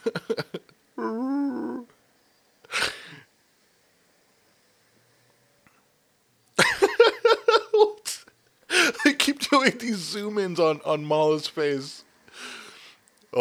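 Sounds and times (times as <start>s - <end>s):
laughter: 0.0s - 0.6s, 6.6s - 10.3s
Wookiee growling and howling vocalizations: 1.0s - 1.9s
speech: 9.6s - 12.0s.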